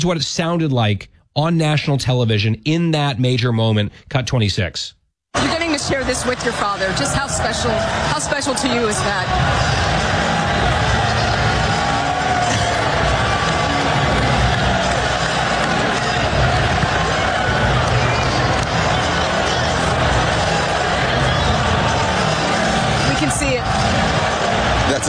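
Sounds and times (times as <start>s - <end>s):
speech: 0.0s - 9.8s
basketball fans cheering in an arena: 5.4s - 25.0s.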